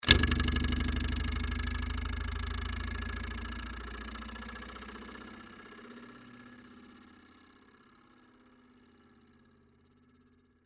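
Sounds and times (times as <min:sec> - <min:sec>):
door stopper moving: 0:00.0 - 0:03.2.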